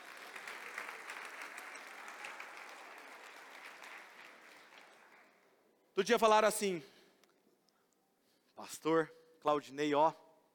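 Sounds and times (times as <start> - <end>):
audience applause: 0.0 - 5.4
speech: 6.0 - 6.9, 8.7 - 10.2.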